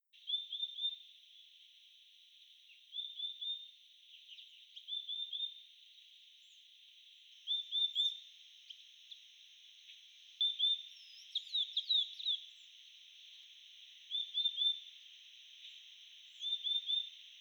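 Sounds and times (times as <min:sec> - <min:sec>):
Euphonia chlorotica in Jujuy: 0:00.2 - 0:01.1, 0:02.6 - 0:09.2, 0:10.4 - 0:13.4, 0:14.1 - 0:14.9, 0:15.6 - 0:17.3.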